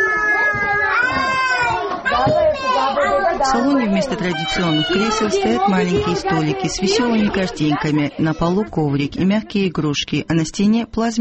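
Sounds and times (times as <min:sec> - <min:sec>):
children squealing with joy: 0:00.0 - 0:03.4, 0:04.0 - 0:05.6
speech: 0:03.5 - 0:11.1.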